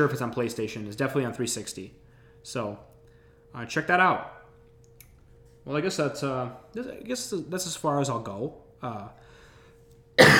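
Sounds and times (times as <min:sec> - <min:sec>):
speech: 0:00.0 - 0:02.9, 0:03.5 - 0:04.4, 0:05.6 - 0:09.3
quiet hum: 0:00.0 - 0:10.3
loud cough: 0:10.2 - 0:10.3.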